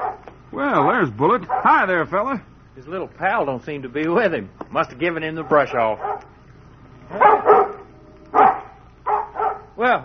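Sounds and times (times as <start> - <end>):
dog barking excitedly: 0.0 - 0.3, 1.5 - 1.8, 5.4 - 6.4, 7.1 - 9.8
speech: 0.6 - 6.2, 7.1 - 7.5, 9.8 - 10.0.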